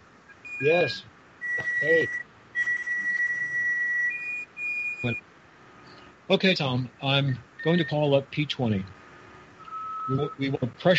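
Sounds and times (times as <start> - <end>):
eerie otherworldly whistling tone: 0.5 - 5.2
speech: 0.6 - 2.3, 5.0 - 5.2, 6.3 - 9.0, 10.1 - 10.9.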